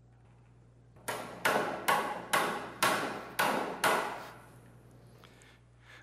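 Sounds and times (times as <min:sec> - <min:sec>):
low hum: 0:00.0 - 0:06.0
hammering blows struck with a saw: 0:01.0 - 0:04.5.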